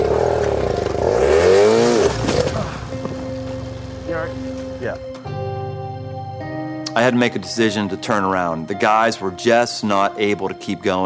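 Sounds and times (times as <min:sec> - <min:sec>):
bike engine revving as more throttle is given: 0:00.0 - 0:05.1
speech: 0:07.0 - 0:11.0.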